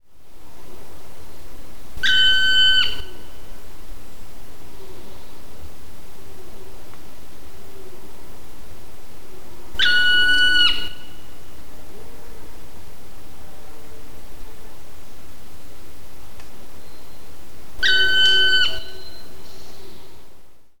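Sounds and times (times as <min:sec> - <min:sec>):
black woodpecker calling: 0:02.0 - 0:03.2, 0:09.8 - 0:11.2, 0:17.8 - 0:19.4.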